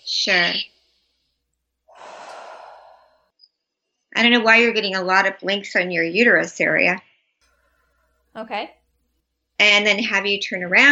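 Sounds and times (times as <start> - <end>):
speech: 0.2 - 0.7, 4.2 - 7.1, 8.4 - 8.8, 9.6 - 10.8
standing person exhaling a deep breath: 1.9 - 3.3.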